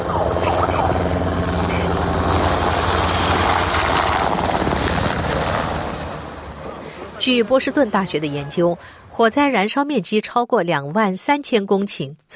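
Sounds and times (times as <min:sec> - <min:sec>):
helicopter rotor chop overhead: 0:00.0 - 0:08.5
speech: 0:07.3 - 0:12.3.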